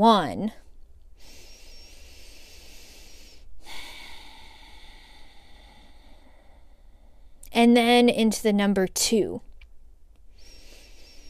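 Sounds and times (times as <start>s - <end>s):
speech: 0.0s - 0.6s, 7.6s - 9.5s
slow deep breathing during a guided exercise: 1.2s - 7.4s, 10.3s - 11.2s.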